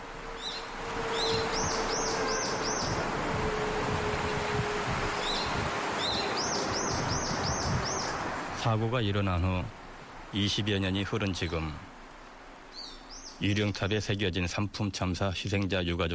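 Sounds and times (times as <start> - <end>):
birds chirping in a city park: 0.0 - 3.2, 5.1 - 8.6, 9.2 - 11.8, 12.6 - 14.2
wind rustling leaves outdoors in a city park: 0.0 - 16.1
speech: 8.6 - 11.9, 13.4 - 16.1.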